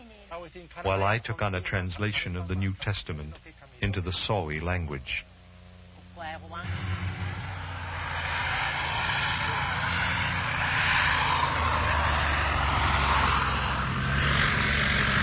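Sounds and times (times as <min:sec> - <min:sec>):
speech: 0:00.4 - 0:05.3, 0:06.2 - 0:07.3
propeller airplane droning overhead: 0:05.3 - 0:15.2.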